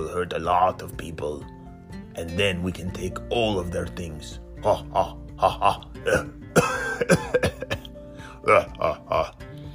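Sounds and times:
speech: 0:00.0 - 0:01.6, 0:02.2 - 0:07.5, 0:08.5 - 0:09.4
harsh voiced coughing: 0:04.8 - 0:09.3.

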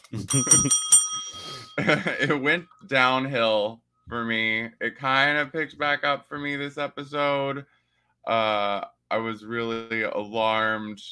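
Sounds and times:
speech: 0:00.1 - 0:11.1
bright bell ringing: 0:00.2 - 0:02.8.

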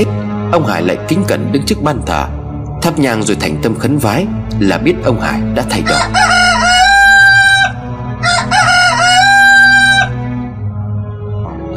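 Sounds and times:
speech: 0:00.0 - 0:06.5
rooster crowing at dawn: 0:05.8 - 0:10.2.

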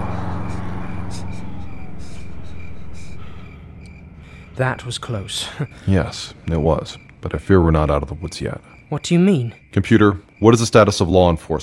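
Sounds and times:
federal vehicle sirens wailing: 0:00.0 - 0:07.0
three federal vehicles speeding past with engine rumble and road noise: 0:00.0 - 0:07.4
speech: 0:04.6 - 0:11.6.

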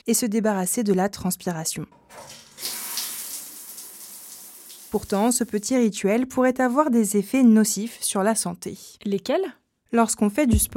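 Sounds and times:
speech: 0:00.0 - 0:02.8, 0:04.9 - 0:10.7
shower water running: 0:02.0 - 0:05.8.

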